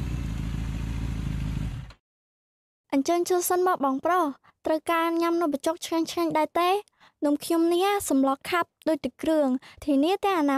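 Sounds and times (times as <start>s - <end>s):
motorcycle riding up and stopping in front of a food stall: 0.0s - 2.0s
speech: 2.9s - 10.5s.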